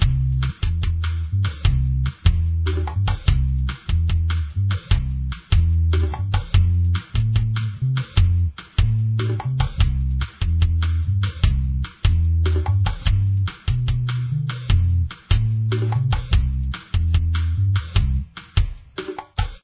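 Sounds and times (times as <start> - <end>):
backing music: 0.0 - 19.6.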